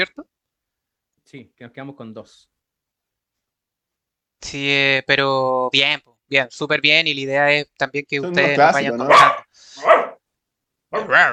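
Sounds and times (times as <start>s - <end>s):
speech: 0.0s - 0.3s, 1.3s - 2.5s, 4.4s - 9.9s, 10.9s - 11.3s
very large dog barking with short tonal slightly whiny barks: 8.9s - 10.2s, 10.9s - 11.2s.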